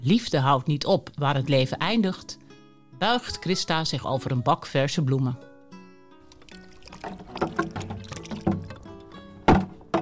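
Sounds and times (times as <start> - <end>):
speech: 0.0 - 2.4, 3.0 - 5.5
water poured generously over flowers on a grave: 6.2 - 9.3
water splashing and trickling: 6.2 - 9.7
soft knocks: 9.5 - 10.0.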